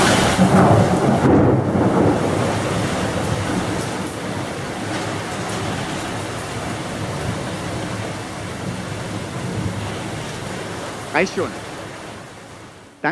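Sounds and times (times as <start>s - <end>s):
deep heavy thunder rumbling: 0.0s - 12.8s
steady rain: 0.0s - 13.1s
speech: 11.2s - 11.6s.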